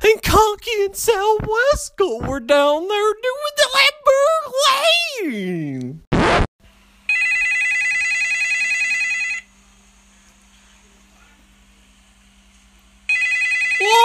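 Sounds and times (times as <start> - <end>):
speech: 0.5 - 6.0
loud burst: 6.1 - 6.5
newly bought mobile flip phone ringing with a warbling electronic tone: 7.1 - 9.5, 13.1 - 13.9.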